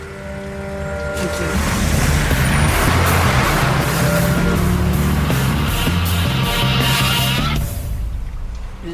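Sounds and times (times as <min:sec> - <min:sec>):
sports car engine roaring: 0:00.0 - 0:08.8
broadband road noise: 0:00.0 - 0:08.9
speech: 0:01.2 - 0:01.8.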